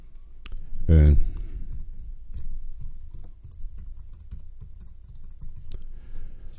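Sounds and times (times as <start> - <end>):
brief low voiced sound: 0.8 - 1.4
rapid typing on a computer keyboard: 1.7 - 5.9.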